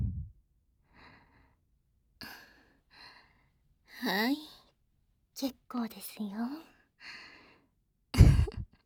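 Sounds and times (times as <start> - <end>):
slow breathing in and out during a guided exercise to ease breathlessness: 0.0 - 3.6, 6.9 - 7.8
speech: 4.0 - 4.5, 5.4 - 7.2.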